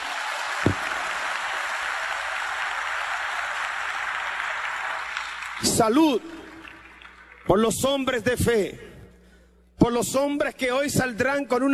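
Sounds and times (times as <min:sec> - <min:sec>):
audience applauding: 0:00.0 - 0:08.2
speech: 0:05.6 - 0:06.4, 0:07.5 - 0:08.9, 0:09.8 - 0:11.7.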